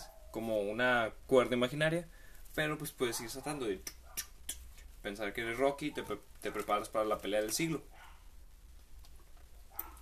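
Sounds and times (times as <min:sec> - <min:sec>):
speech: 0:00.4 - 0:04.3, 0:05.0 - 0:08.0
dog barking: 0:03.0 - 0:04.3, 0:05.8 - 0:06.2, 0:07.9 - 0:08.3, 0:09.7 - 0:10.0.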